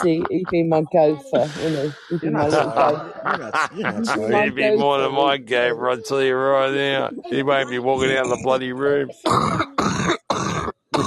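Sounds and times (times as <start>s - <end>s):
laughter: 0.0s - 9.1s
speech: 0.0s - 9.7s
throat clearing: 3.7s - 9.6s.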